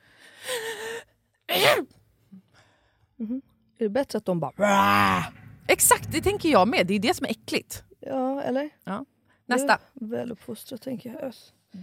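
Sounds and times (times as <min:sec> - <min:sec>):
person imitating a stifled sneeze: 0:01.5 - 0:02.0
speech: 0:01.7 - 0:02.4, 0:03.2 - 0:11.8.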